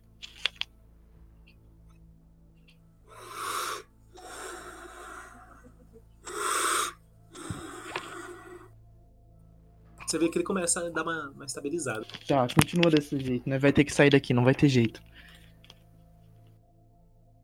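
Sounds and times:
heavy rapid raspy wheezing breathing: 0:03.1 - 0:08.8
speech: 0:10.1 - 0:15.2.

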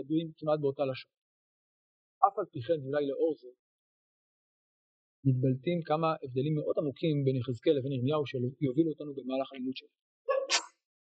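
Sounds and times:
speech: 0:00.0 - 0:01.2, 0:02.2 - 0:03.6, 0:05.2 - 0:10.6
sneeze: 0:10.3 - 0:10.8.

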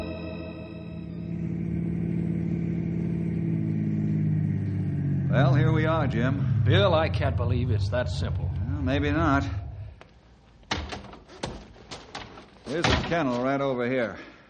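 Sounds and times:
car engine revving while driving: 0:00.1 - 0:10.3
speech: 0:06.0 - 0:09.6, 0:12.7 - 0:14.3.

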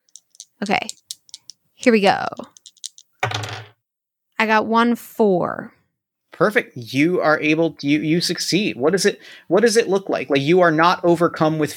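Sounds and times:
two dice clicking: 0:00.0 - 0:03.7
speech: 0:00.6 - 0:01.0, 0:01.8 - 0:02.7, 0:04.4 - 0:05.8, 0:06.4 - 0:11.7.

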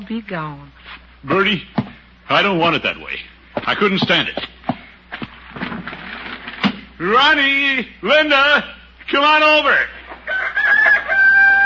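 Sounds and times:
speech: 0:00.0 - 0:04.5, 0:07.0 - 0:10.0
rooster crowing: 0:10.2 - 0:11.6.

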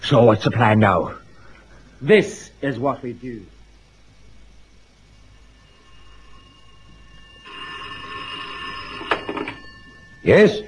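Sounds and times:
speech: 0:00.1 - 0:01.2, 0:02.0 - 0:03.6, 0:10.2 - 0:10.6
telephone bell ringing with a metallic trill: 0:05.7 - 0:10.6.

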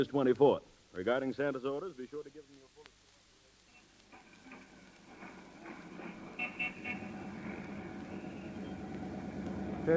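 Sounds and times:
speech: 0:00.0 - 0:02.7
street traffic rumble: 0:04.0 - 0:09.9
city bus engine running: 0:05.1 - 0:09.9
car horn toots: 0:06.4 - 0:07.2.

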